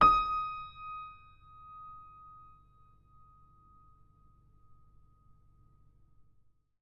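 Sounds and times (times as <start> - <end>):
piano note D sharp 3: 0.0 - 3.4.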